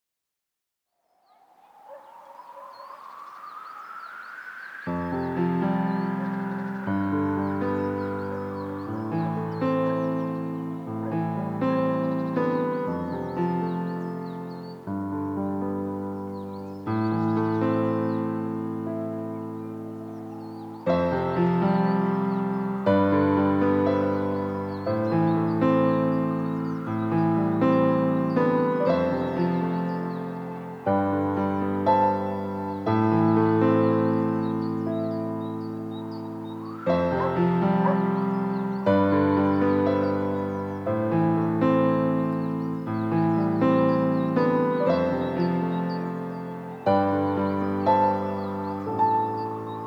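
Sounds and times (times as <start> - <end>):
piano ambience: 0.9 - 49.8.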